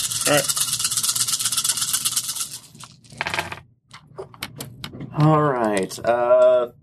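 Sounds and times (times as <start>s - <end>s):
dice rattling and clattering: 0.0s - 3.6s
speech: 0.3s - 0.6s, 5.2s - 6.8s.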